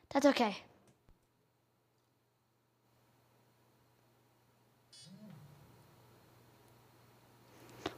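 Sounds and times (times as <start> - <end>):
speech: 0.1 - 0.7
machine humming at a low pitch: 4.9 - 7.9.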